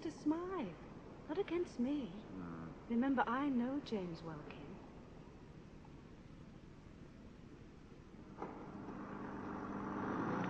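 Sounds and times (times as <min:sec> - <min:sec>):
speech: 0:00.0 - 0:04.6
car engine humming while driving: 0:08.2 - 0:10.4.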